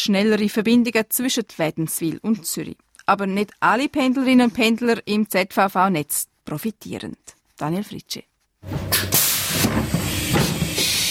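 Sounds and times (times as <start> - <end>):
speech: 0.0 - 10.0
S-Bahn commuter train letting out bursts of hissing air: 8.9 - 11.1.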